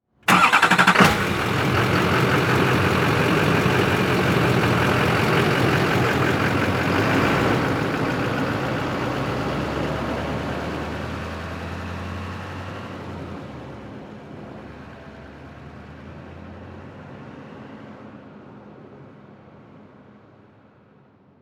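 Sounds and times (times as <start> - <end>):
diesel truck engine starting: 0.2 - 12.8.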